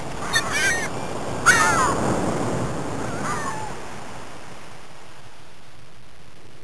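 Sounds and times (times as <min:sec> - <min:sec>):
seagulls: 0:00.2 - 0:02.0, 0:03.0 - 0:03.8.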